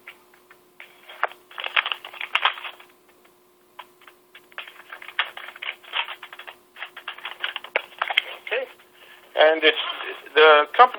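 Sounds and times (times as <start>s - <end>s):
printed paper receipt from a furnace repair crackling and rustling: 0.8s - 2.9s, 3.8s - 9.0s
speech: 9.5s - 9.8s, 10.4s - 10.9s.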